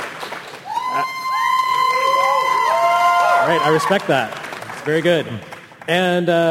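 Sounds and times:
high whoops and sliding yells: 0.7 - 4.1
live audience cheering and shouting to vote for a video game: 0.7 - 4.2
speech: 3.5 - 6.4.

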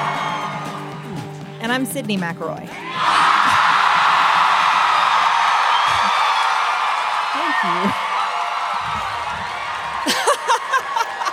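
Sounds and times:
live audience in Atlanta cheering and whooping: 0.0 - 1.4, 2.8 - 11.3
speech: 1.7 - 3.2
shouts and laughter: 2.9 - 11.3.

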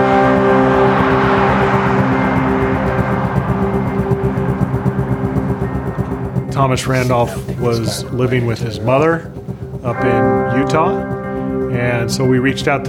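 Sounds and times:
car driving on road with engine humming: 0.0 - 12.8
speech: 6.6 - 12.8.

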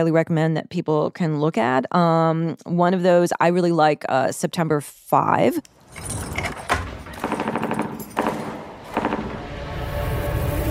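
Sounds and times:
speech: 0.0 - 6.4
rapid bursts of close gunfire: 6.9 - 9.5.

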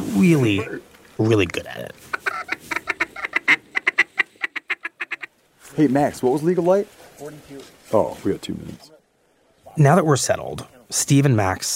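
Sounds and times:
speech: 0.2 - 2.2, 5.7 - 9.0, 9.8 - 11.7
hand-blown duck call quacks: 2.1 - 5.3.

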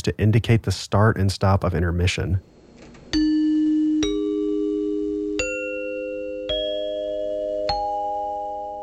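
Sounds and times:
speech: 0.0 - 2.5
hand chimes struck in a rising sequence: 3.1 - 8.8.

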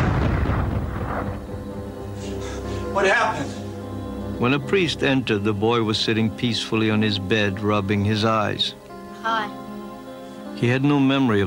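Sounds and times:
deep thunderous boom echoing through a hospital: 0.0 - 1.9
speech: 3.0 - 3.6, 4.4 - 9.6, 10.6 - 11.4.

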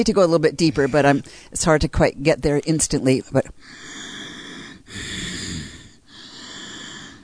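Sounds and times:
speech: 0.0 - 3.9
nasal snore-like rumbling of the upper palate vibrating during breathing: 3.8 - 7.2.

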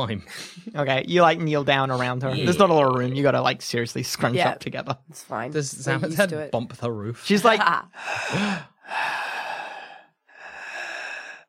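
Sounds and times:
speech: 0.0 - 9.2
voice imitating a person's breathing: 8.0 - 11.4.

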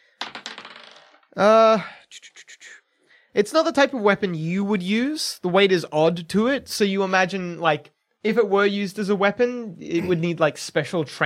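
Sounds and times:
dice being rolled: 0.1 - 1.4
speech: 1.4 - 2.3, 3.4 - 11.2.

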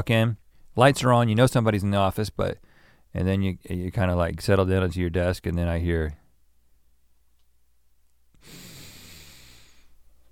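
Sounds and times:
speech: 0.0 - 6.2
person imitating nostril breathing with a hissing nasal exhale: 8.4 - 10.0.

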